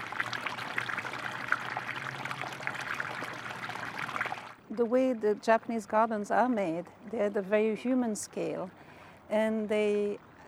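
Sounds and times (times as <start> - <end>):
small waterfall stream pouring into a pond: 0.0 - 4.6
speech: 4.8 - 10.3.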